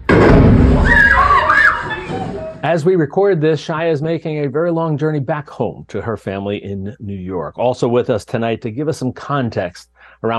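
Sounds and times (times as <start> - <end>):
bomb exploding in Tel Aviv: 0.0 - 2.6
wavering higher tones: 0.8 - 2.6
speech: 2.6 - 10.3.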